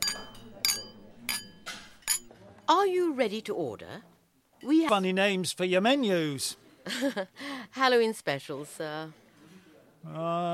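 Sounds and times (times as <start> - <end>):
champagne glasses clinking in a toast: 0.0 - 2.3
faint murmur: 0.0 - 4.9, 6.2 - 10.5
speech: 2.7 - 9.2, 10.0 - 10.5.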